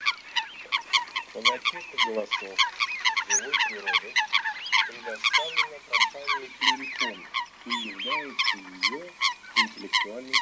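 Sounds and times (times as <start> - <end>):
faint background hiss: 0.0 - 10.3
Eurasian coot giving short nasal honking notes: 0.7 - 10.3.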